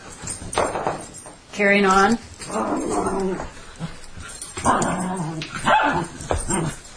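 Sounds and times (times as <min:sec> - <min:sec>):
speech: 0:01.6 - 0:03.9
dogs growling and whining: 0:02.4 - 0:06.9
dogs barking: 0:05.6 - 0:06.7.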